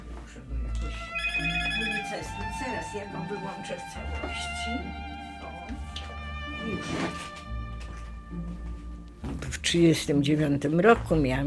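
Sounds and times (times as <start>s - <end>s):
mobile phone electronic ringtone: 0.9s - 2.9s
speech: 2.2s - 5.2s, 6.6s - 7.4s, 9.7s - 11.4s.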